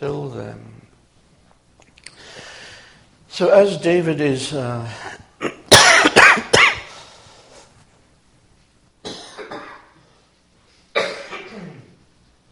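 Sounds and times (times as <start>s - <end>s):
speech: 0.0s - 0.8s, 3.4s - 5.2s
church congregation coughing amplified through microphones: 5.0s - 7.0s, 9.0s - 10.0s, 10.9s - 12.0s.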